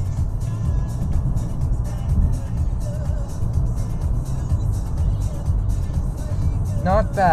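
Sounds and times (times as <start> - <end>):
BMW car engine cruising in sixth gear at 2,000 RPM and 100 km/h: 0.0 - 7.3.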